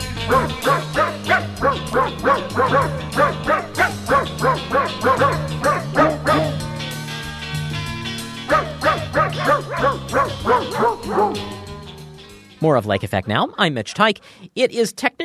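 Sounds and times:
pack of sled dog huskies barking and yipping: 0.2s - 7.0s, 8.4s - 11.9s
speech: 12.8s - 15.2s.

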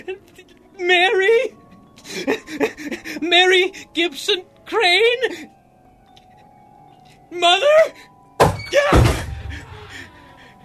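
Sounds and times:
speech: 0.0s - 1.2s, 3.6s - 5.6s, 7.3s - 8.1s, 8.7s - 9.2s
door crashing open: 8.4s - 9.6s
heavy thuds and rattling: 8.4s - 9.6s.

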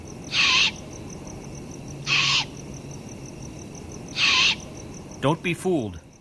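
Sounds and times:
young great horned owl raspy hissing calls: 0.3s - 0.9s, 2.0s - 2.6s, 4.1s - 4.8s
speech: 5.2s - 6.0s.

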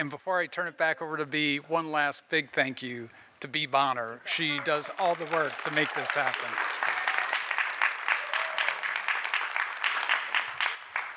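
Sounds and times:
speech: 0.0s - 6.7s
audience applause: 4.3s - 11.1s.

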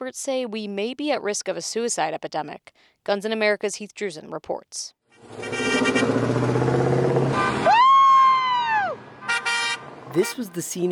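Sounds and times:
speech: 0.0s - 6.6s, 10.2s - 10.9s
engines of hundreds of cars rumbling on a main street: 5.2s - 10.9s
sustained car horn blaring loudly over traffic: 5.3s - 6.3s, 9.2s - 10.9s.

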